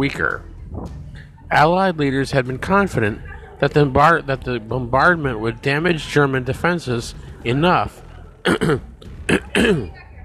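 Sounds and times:
speech: 0.0s - 10.0s
man clearing his throat: 8.4s - 10.0s.

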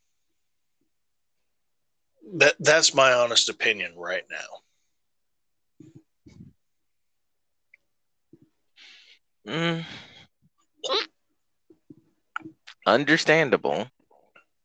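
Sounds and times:
speech: 2.3s - 4.7s, 9.5s - 10.1s, 12.8s - 14.0s
longer voiced groan: 9.5s - 10.2s
short abrupt hiccups: 10.8s - 11.2s.

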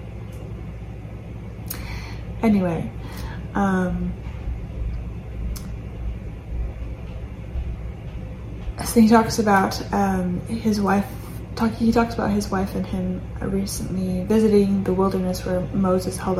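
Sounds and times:
washer and dryer running next door: 0.0s - 16.3s
speech: 2.4s - 4.3s, 8.8s - 16.3s.

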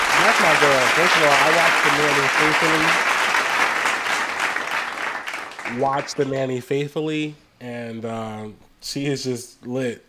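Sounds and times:
crowd applauding: 0.0s - 6.4s
speech: 0.2s - 3.1s, 5.7s - 10.0s.

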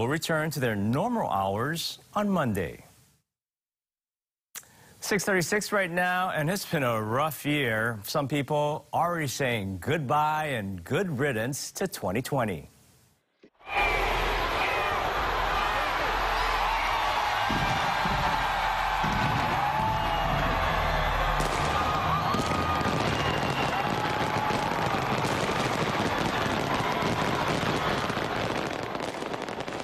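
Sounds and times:
speech: 0.0s - 2.9s, 5.0s - 12.7s
fireworks display bursting and crackling at midnight: 13.6s - 29.8s
roar of crowd noise: 13.6s - 29.8s.

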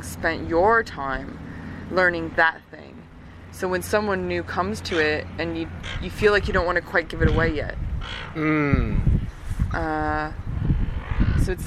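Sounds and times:
rough rustling outdoor background: 0.0s - 11.6s
speech: 0.2s - 2.8s, 3.5s - 10.4s, 11.4s - 11.6s
seagulls squabbling over seaweed: 4.6s - 8.4s.

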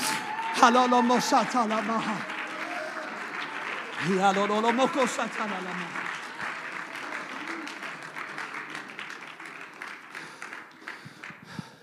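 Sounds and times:
loud voices whooping and shouting: 0.0s - 8.0s
audience clapping: 0.0s - 11.8s.

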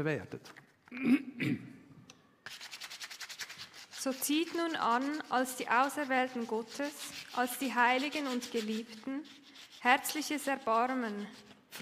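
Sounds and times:
speech: 0.0s - 1.8s, 4.0s - 11.8s
sandpaper rubbing over a page torn from a Bible: 2.5s - 11.8s.

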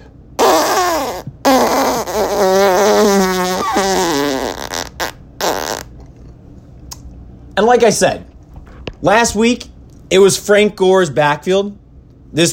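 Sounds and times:
loud drawn-out fart sound effect with wobbling buzzy pitch: 0.4s - 6.0s
speech: 7.7s - 8.3s, 9.0s - 12.5s.

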